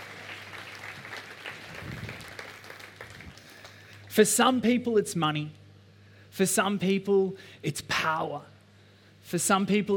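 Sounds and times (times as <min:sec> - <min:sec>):
audience cheering: 0:00.0 - 0:03.4
audience clapping: 0:00.0 - 0:04.1
speech: 0:04.2 - 0:05.6, 0:06.4 - 0:08.5, 0:09.3 - 0:09.9.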